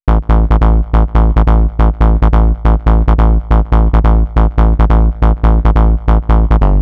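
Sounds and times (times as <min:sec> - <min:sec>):
140 bpm house bass loop in A minor: 0:00.0 - 0:06.8.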